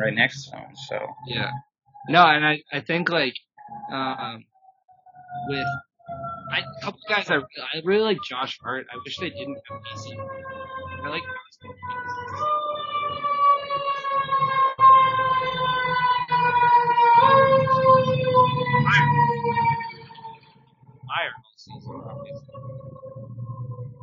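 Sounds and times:
speech: 0.0s - 4.5s, 5.3s - 12.5s
fire engine siren wailing: 3.6s - 24.0s.

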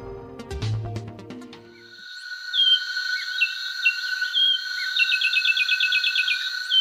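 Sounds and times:
steady insect-like drone: 1.8s - 6.7s
finch singing: 2.6s - 6.7s.

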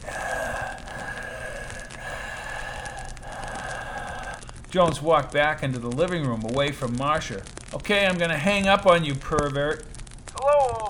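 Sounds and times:
heavy slow breathing over a phone line: 0.0s - 5.1s
speech: 4.7s - 10.8s.

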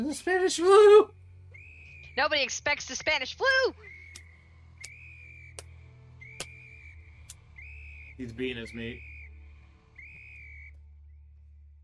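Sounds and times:
speech: 0.0s - 1.2s, 2.2s - 4.0s, 8.2s - 9.1s
low hum: 0.0s - 10.2s
sharp steady whistle blast: 1.5s - 2.4s, 3.7s - 10.8s.

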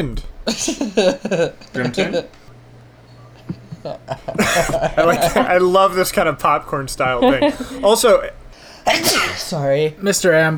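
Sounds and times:
speech: 0.0s - 2.4s, 3.8s - 10.5s
laughter: 0.0s - 9.7s
sharp sneeze caused by a small allergy: 8.7s - 9.6s.

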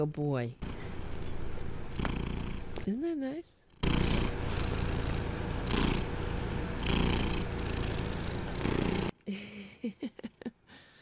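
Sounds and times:
speech: 0.0s - 0.7s, 2.9s - 3.6s, 9.3s - 10.9s
male emotional support cat purring: 0.6s - 2.9s, 3.6s - 9.1s
laughter: 9.3s - 10.6s.

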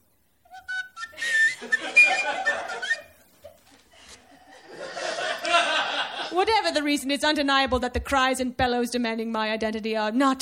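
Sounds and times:
tune played on a whistle: 0.5s - 3.2s
people chuckling: 1.1s - 6.4s
speech: 6.7s - 10.4s.

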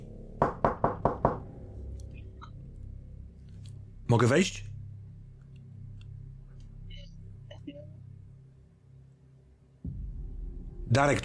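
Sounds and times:
knocking on a door: 0.4s - 1.5s
speech: 4.1s - 4.7s, 11.0s - 11.2s.

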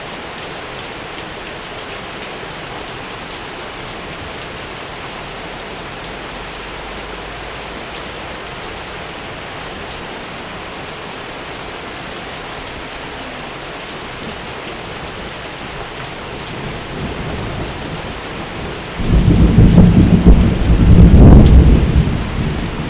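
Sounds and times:
steady dense rain of fine drops hissing: 0.0s - 22.8s
deep rumble of thunder: 16.6s - 22.8s.

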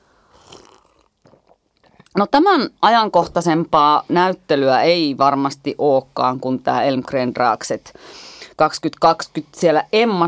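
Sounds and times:
slurping hot takeaway coffee: 0.3s - 1.6s
speech: 2.2s - 10.2s.

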